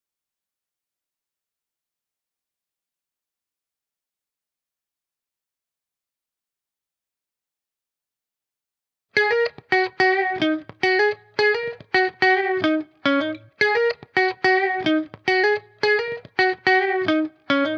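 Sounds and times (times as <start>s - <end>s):
C# minor lead guitar loop: 9.2s - 17.7s.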